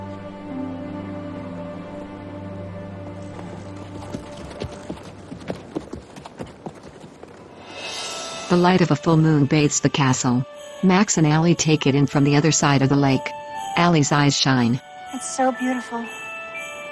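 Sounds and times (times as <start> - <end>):
horse hooves clip-clopping on hard ground: 3.2 - 7.8
speech: 8.5 - 16.2.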